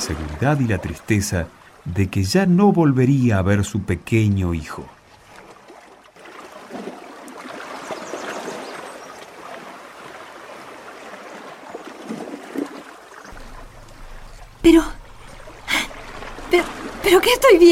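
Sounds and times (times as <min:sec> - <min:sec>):
river water flowing and babbling: 0:00.0 - 0:02.8, 0:04.8 - 0:17.7
speech: 0:00.1 - 0:05.0, 0:14.7 - 0:15.0, 0:16.6 - 0:17.7
low hum: 0:13.3 - 0:17.7.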